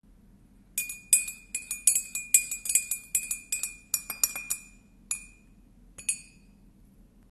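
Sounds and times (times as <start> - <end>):
kitchen sounds: 0.8 - 6.5.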